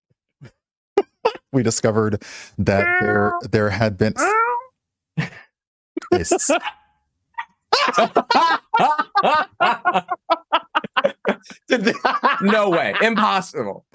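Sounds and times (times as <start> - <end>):
speech: 1.6 - 4.4, 6.2 - 6.8, 7.8 - 10.4, 11.2 - 13.9
people imitating cat meows: 2.7 - 3.5, 4.2 - 4.7
laughter-like bursts: 7.7 - 13.4.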